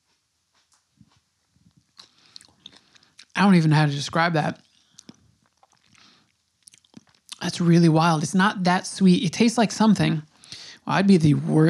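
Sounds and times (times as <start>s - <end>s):
wet chewing of pickled watermelon: 0.6s - 3.4s, 4.6s - 7.4s
speech: 3.4s - 4.6s, 7.6s - 10.3s, 10.9s - 11.6s.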